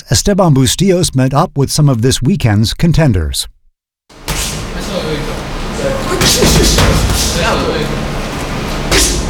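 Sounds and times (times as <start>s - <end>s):
speech: 0.1s - 3.6s, 6.2s - 8.1s
constant noisy hum: 4.1s - 9.2s
bare-knuckle fists striking punching bags in a boxing gym: 6.0s - 7.6s, 8.9s - 9.2s.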